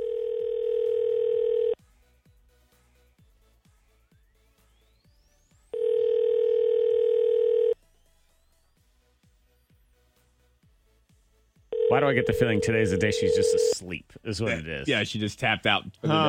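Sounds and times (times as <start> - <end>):
telephone dial tone while a call is being placed: 0.0 - 1.8, 5.8 - 7.8, 11.8 - 13.8
speech: 12.0 - 16.2.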